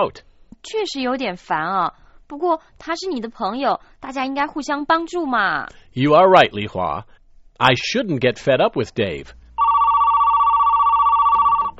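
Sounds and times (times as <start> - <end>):
speech: 0.0 - 9.4
telephone ringing with a bright warbling electronic tone: 9.6 - 11.7.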